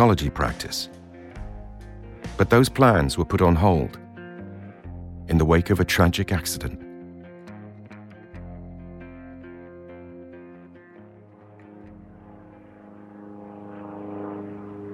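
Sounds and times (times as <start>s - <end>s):
speech: 0.0s - 1.0s, 2.4s - 4.0s, 5.3s - 6.8s
small turboprop airplane engine droning: 10.4s - 14.9s.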